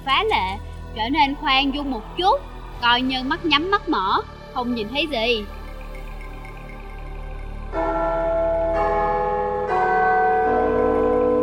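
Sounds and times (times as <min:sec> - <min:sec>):
speech: 0:00.0 - 0:05.6
large bell tolling: 0:05.6 - 0:11.4.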